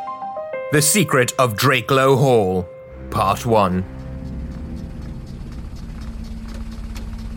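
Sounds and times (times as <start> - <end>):
speech: 0.7 - 4.0
motor car engine running on a country road: 2.9 - 7.3.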